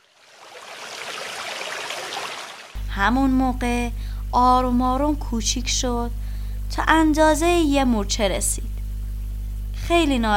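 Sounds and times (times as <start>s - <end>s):
spring water flowing over stones: 0.0s - 2.8s
speech: 3.0s - 8.7s, 9.9s - 10.3s.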